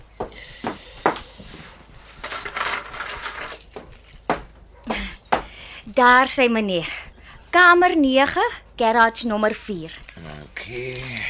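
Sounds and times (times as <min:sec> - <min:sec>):
bunch of keys jangling: 0:02.2 - 0:04.4, 0:09.9 - 0:11.2
speech: 0:06.0 - 0:07.0, 0:07.6 - 0:10.0, 0:10.7 - 0:11.2.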